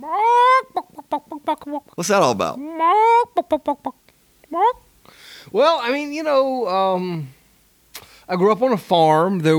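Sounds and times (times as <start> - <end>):
backyard flock chicken squawking and clucking: 0.0 - 2.0, 2.6 - 4.0
speech: 1.5 - 4.0, 5.5 - 7.4, 8.3 - 9.5.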